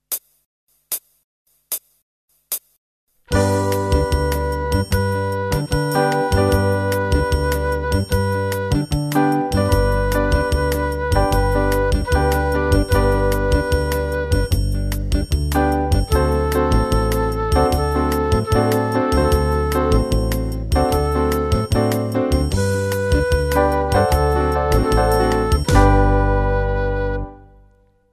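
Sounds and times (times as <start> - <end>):
2 note samba on flute: 3.3 - 27.9.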